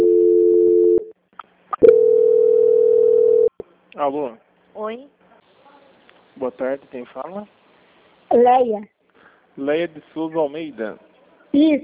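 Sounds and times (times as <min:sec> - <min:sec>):
telephone call transfer tone: 0:00.0 - 0:01.1, 0:01.8 - 0:03.5
speech: 0:04.0 - 0:05.2, 0:06.4 - 0:07.6, 0:08.3 - 0:08.9, 0:09.6 - 0:11.8.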